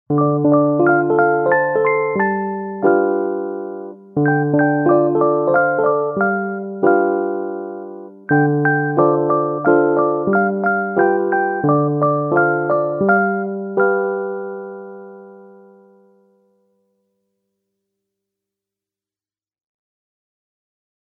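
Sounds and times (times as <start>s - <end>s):
keyboard playing: 0.1s - 16.3s.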